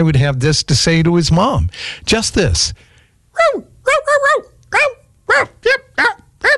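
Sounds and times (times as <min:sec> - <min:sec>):
speech: 0:00.0 - 0:06.5
dog barking with high-pitched yelping barks: 0:03.4 - 0:06.5.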